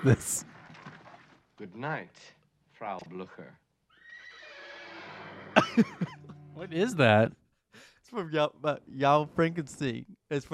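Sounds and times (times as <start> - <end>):
speech: 0.0 - 0.5, 1.6 - 3.6, 5.7 - 10.5
horse neighing: 3.9 - 5.7
laughter: 5.6 - 7.0.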